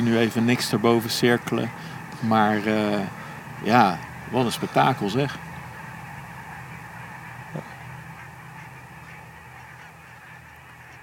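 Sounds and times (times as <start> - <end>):
speech: 0.0 - 5.5
large flock of barnacle geese honking: 0.0 - 11.0.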